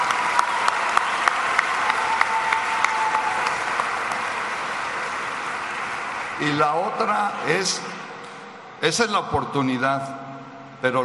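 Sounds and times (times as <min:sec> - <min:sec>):
large audience applauding: 0:00.0 - 0:08.0
speech: 0:06.4 - 0:08.0, 0:08.8 - 0:10.2, 0:10.8 - 0:11.0.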